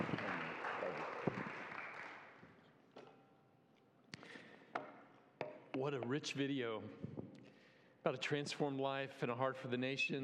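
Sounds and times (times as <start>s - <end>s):
crowd applauding: 0.0s - 2.6s
scattered claps: 0.0s - 2.6s
speech: 5.8s - 7.1s, 8.0s - 10.2s.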